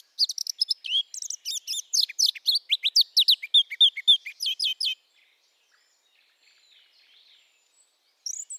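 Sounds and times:
Eurasian blackcap Sylvia atricapilla singing: 0:00.0 - 0:05.0, 0:08.2 - 0:08.5.

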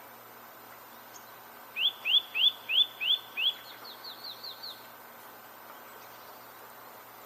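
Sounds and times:
Eurasian nuthatch Sitta europaea upslurred whistles: 0:01.8 - 0:04.8.

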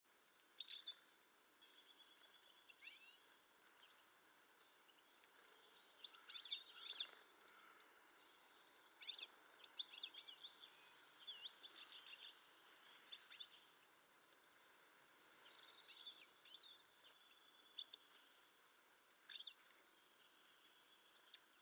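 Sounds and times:
European goldfinch Carduelis carduelis twittering song: 0:00.1 - 0:21.6
background hiss: 0:00.1 - 0:21.6.

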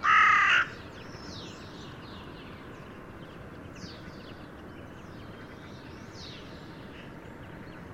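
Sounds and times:
Carrion crow Corvus corone cawing: 0:00.0 - 0:00.8.

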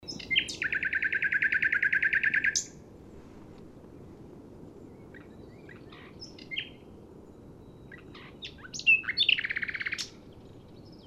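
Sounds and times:
common nightingale Luscinia megarhynchos singing: 0:00.0 - 0:02.8, 0:04.7 - 0:11.0.

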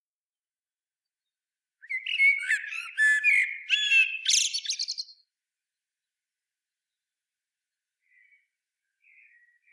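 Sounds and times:
common blackbird Turdus merula song phrase: 0:01.2 - 0:05.3, 0:07.8 - 0:09.7.

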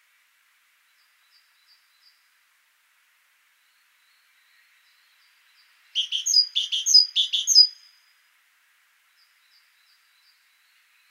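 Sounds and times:
great tit calls: 0:06.0 - 0:08.0.

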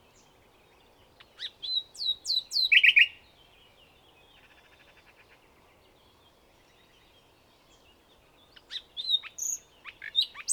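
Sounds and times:
common nightingale singing: 0:01.2 - 0:03.2, 0:08.6 - 0:10.5.

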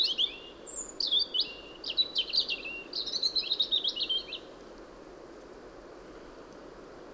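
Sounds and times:
European robin Erithacus rubecula singing scratchy twittering phrases and trills: 0:00.0 - 0:04.5.

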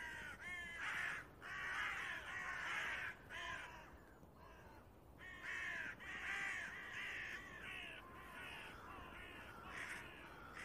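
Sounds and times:
Carrion crow giving hoarse grating caws: 0:00.0 - 0:10.6.

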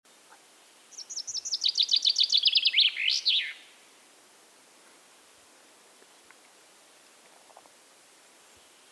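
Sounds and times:
common chaffinch Fringilla coelebs song: 0:00.1 - 0:04.0.

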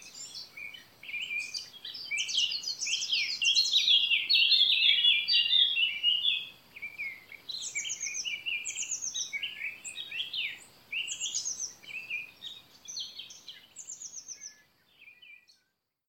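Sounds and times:
Eurasian blackcap (Sylvia atricapilla) singing: 0:00.0 - 0:15.6.

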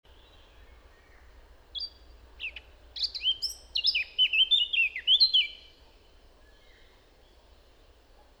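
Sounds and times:
Eurasian blackcap Sylvia atricapilla song: 0:01.8 - 0:05.7.

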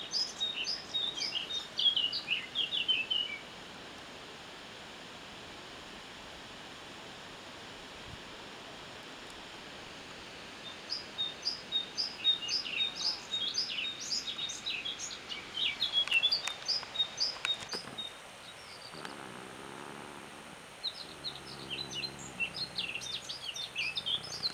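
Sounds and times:
steady background hiss: 0:00.0 - 0:24.5
Eurasian blackcap Sylvia atricapilla singing rapid varied warbling notes: 0:18.7 - 0:24.5.

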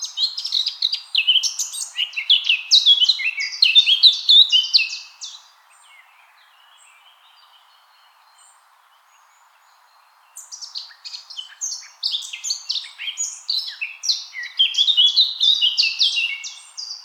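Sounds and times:
Eurasian blackcap Sylvia atricapilla song: 0:00.0 - 0:06.1, 0:10.4 - 0:17.0.

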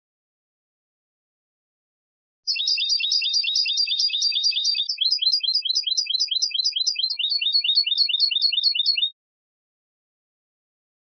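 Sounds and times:
European goldfinch Carduelis carduelis twittering: 0:02.5 - 0:09.1.

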